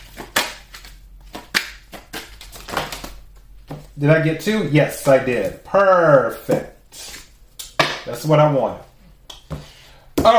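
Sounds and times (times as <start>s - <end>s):
tarot cards being shuffled and drawn: 0.0s - 4.0s
speech: 4.0s - 7.1s, 8.1s - 8.9s.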